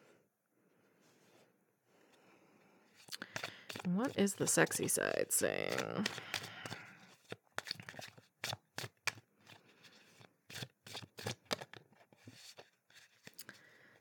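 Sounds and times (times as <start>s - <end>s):
soft rustling of playing cards: 0.7s - 6.2s
playing cards handled and drawn from a deck: 3.1s - 9.2s
speech: 3.9s - 6.6s.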